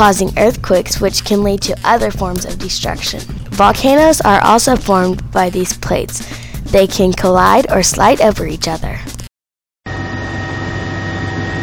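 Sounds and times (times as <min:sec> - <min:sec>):
speech: 0:00.0 - 0:09.2
helicopter flying over a volcanic region: 0:09.9 - 0:11.6
thin high whine: 0:09.9 - 0:11.6.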